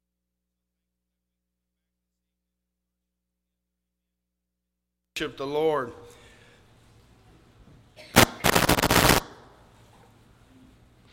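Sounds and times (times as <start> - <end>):
speech: 5.2 - 6.1
firework bang: 8.2 - 9.5.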